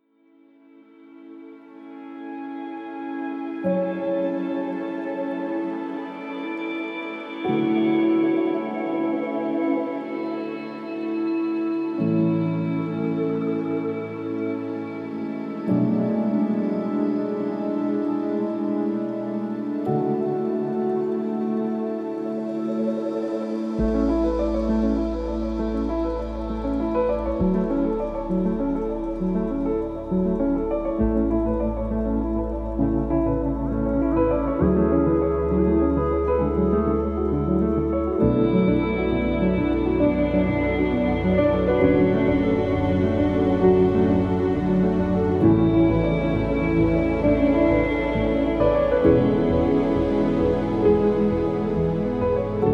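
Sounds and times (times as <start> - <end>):
anthem music: 0.0 - 52.7.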